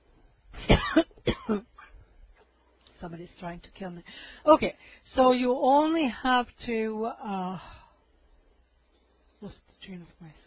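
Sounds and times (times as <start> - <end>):
coughing: 0.6 - 2.0
speech: 3.0 - 7.8, 9.4 - 10.4.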